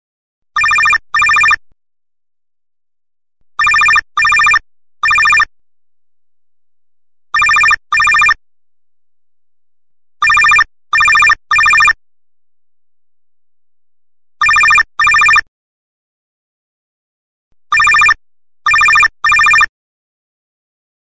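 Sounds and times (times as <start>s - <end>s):
classic cell phone ringtone: 0.6s - 1.6s, 3.6s - 5.5s, 7.4s - 8.4s, 10.2s - 12.0s, 14.4s - 15.4s, 17.7s - 19.7s.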